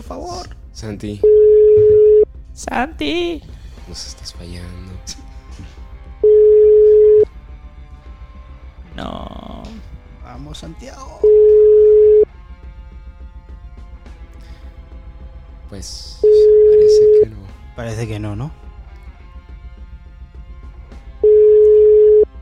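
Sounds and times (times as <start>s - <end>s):
speech: 0.1s - 1.9s, 2.6s - 5.7s, 9.0s - 9.4s, 10.4s - 11.6s, 15.8s - 16.3s, 17.8s - 18.6s
WhatsApp call ringing tone: 1.2s - 2.3s, 6.2s - 7.3s, 11.2s - 12.3s, 16.2s - 17.2s, 21.2s - 22.4s.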